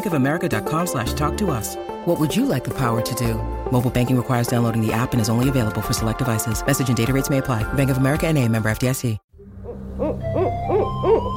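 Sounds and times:
speech: 0.0s - 9.2s
barred owl hooting: 9.6s - 11.3s.

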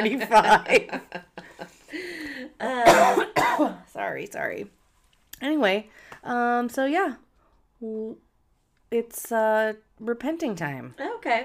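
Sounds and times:
speech: 0.0s - 1.5s, 2.6s - 4.8s, 5.4s - 7.2s, 7.8s - 8.2s, 8.9s - 11.4s
person recovering from the flu clearing throat: 2.8s - 3.8s
person recovering from the flu coughing: 2.8s - 3.9s.

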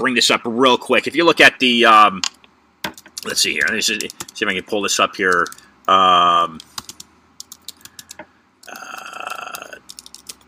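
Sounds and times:
speech: 0.0s - 2.4s, 3.2s - 6.7s
typing on a computer keyboard: 2.8s - 4.4s, 5.3s - 5.6s, 6.6s - 10.4s.

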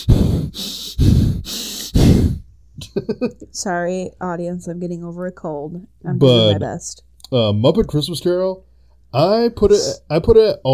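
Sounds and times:
voice imitating heavy breathing into microphone: 0.0s - 2.5s
speech: 3.1s - 10.7s.

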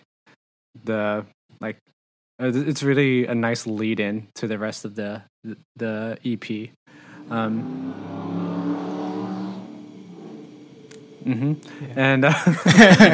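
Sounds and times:
speech: 0.9s - 8.8s, 11.2s - 13.1s
car driving past: 7.0s - 12.1s
people laughing: 11.2s - 11.7s, 12.3s - 13.1s.

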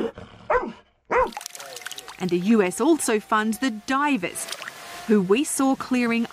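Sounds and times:
rescue dog barking: 0.0s - 1.4s
speech: 2.2s - 6.3s.

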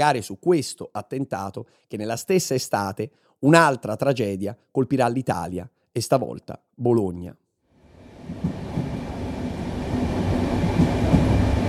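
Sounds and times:
speech: 0.0s - 7.4s
night express train rumbling on rails: 7.9s - 11.6s.

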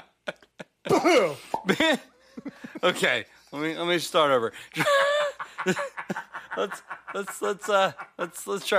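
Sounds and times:
speech: 0.8s - 8.7s
person coughing hard close to the microphone: 0.9s - 2.0s
laughter: 1.7s - 3.2s, 4.7s - 8.7s.

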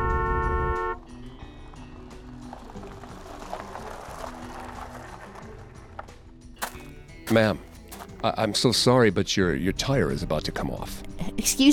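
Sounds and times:
car horn blast: 0.0s - 1.1s
road and engine rumble: 0.0s - 11.7s
speech: 7.3s - 11.7s.

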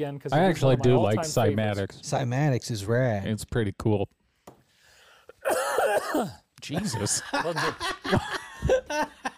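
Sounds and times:
speech: 0.0s - 4.2s, 5.4s - 9.3s
sharp harsh cough: 5.4s - 6.5s
laughter: 6.7s - 9.3s.

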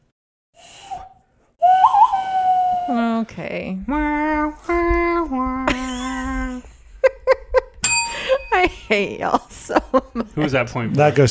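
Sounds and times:
person whistling a Wild West-style tune by mouth: 0.6s - 3.0s
speech: 2.9s - 5.5s, 8.9s - 11.3s
laughter: 5.5s - 11.3s.

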